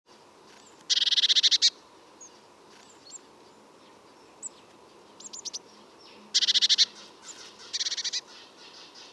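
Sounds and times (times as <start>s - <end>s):
Eurasian blue tit Cyanistes caeruleus churring rattles: 0.6s - 3.2s, 5.2s - 5.6s, 6.4s - 9.1s.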